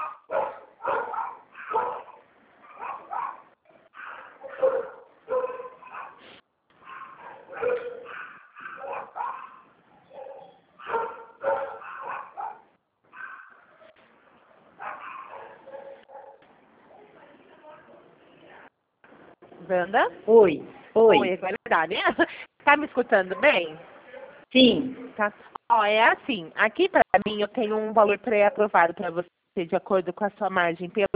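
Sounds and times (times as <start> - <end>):
several dogs barking in the street: 0.0 - 16.4, 23.3 - 24.5
speech: 19.7 - 23.9, 24.5 - 31.1.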